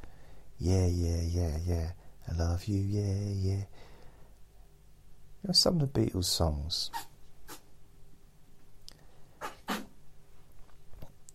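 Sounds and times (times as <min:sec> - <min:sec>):
quiet hiss: 0:00.0 - 0:11.3
speech: 0:00.6 - 0:03.9, 0:05.4 - 0:07.1
small sharp sneezes: 0:09.4 - 0:10.0.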